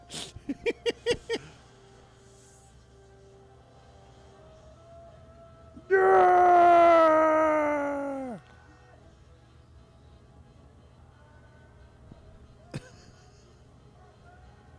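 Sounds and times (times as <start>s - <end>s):
laughter: 0.1s - 1.7s, 12.6s - 14.2s
man screaming in film scene: 5.8s - 8.4s.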